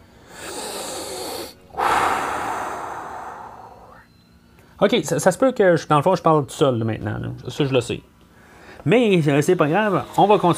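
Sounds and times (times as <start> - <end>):
deep airy inhale: 0.0 - 4.1, 8.3 - 8.8
long forceful exhale: 0.2 - 4.1
speech: 4.8 - 8.1, 8.8 - 10.5.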